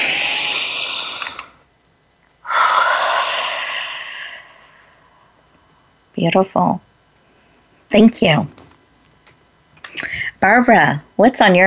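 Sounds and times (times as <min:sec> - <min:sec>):
group breathing in and out together: 0:00.0 - 0:01.6, 0:02.4 - 0:05.3
speech: 0:06.2 - 0:06.9, 0:07.9 - 0:08.6, 0:10.4 - 0:11.6.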